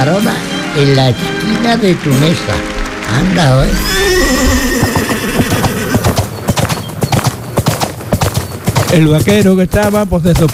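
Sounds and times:
speech: 0.0 - 4.8, 8.9 - 10.5
horse hooves clip-clopping: 0.0 - 10.5
horse neighing: 3.1 - 7.4.

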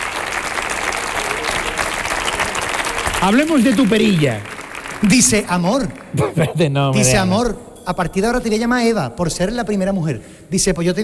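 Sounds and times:
audience applause: 0.0 - 6.4
speech: 3.2 - 11.0.

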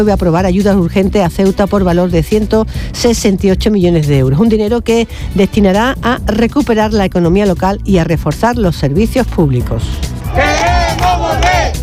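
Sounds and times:
speech: 0.0 - 10.6
protest crowd chanting in the streets at night: 10.2 - 11.8.

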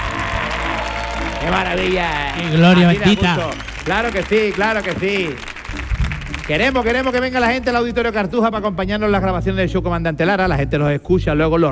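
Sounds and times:
person shouting excitedly: 0.0 - 2.5
live studio audience cheering and applauding at a show recording: 0.0 - 7.8
speech: 1.4 - 5.9, 6.5 - 11.7.

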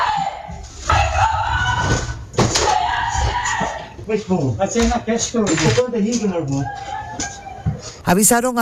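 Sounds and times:
woman screaming on home security camera footage: 0.0 - 3.9
speech: 4.1 - 6.9, 8.1 - 8.6.

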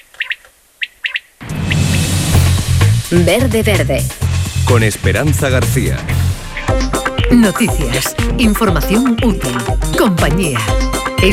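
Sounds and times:
small camouflaged field bird calling in clear chirps: 0.0 - 2.2
loud rumbling wash of noise: 1.4 - 7.3
speech: 3.1 - 6.1, 7.3 - 11.3.

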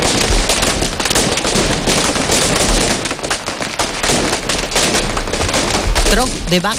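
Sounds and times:
Tro de Bac firecracker bursts: 0.0 - 6.7
person speaking: 6.1 - 6.7.

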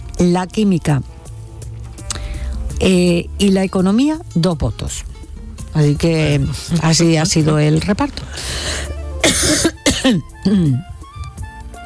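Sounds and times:
speech: 0.2 - 1.1, 2.8 - 5.1, 5.7 - 10.9
harsh raspy coughs: 9.2 - 10.9.

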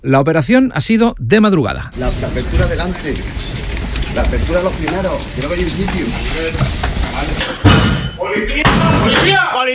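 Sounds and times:
speech: 0.0 - 9.7
splintering crashes: 2.0 - 9.4
battering ram pounding an apartment door: 5.8 - 9.4.

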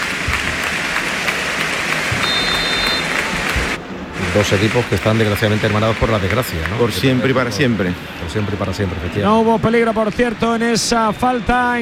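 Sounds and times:
large stadium crowd applauding: 0.0 - 11.8
speech: 4.4 - 11.8.

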